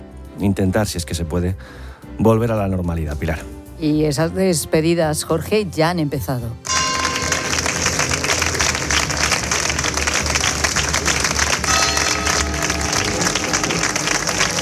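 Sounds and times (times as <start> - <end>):
speech: 0.4 - 6.8
church bells ringing faintly: 6.7 - 9.4, 11.5 - 14.6
large crowd applauding in a long ovation: 6.7 - 14.6.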